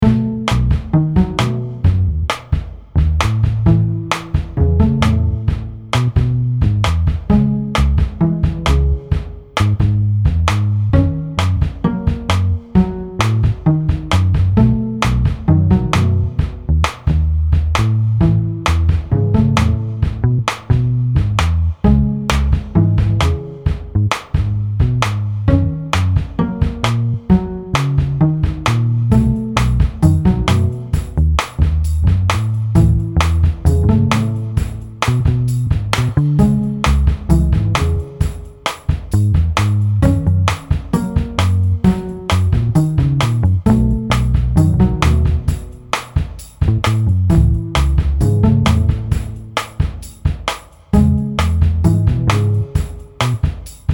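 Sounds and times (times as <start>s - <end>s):
plucked backbeat: 0.0s - 53.9s.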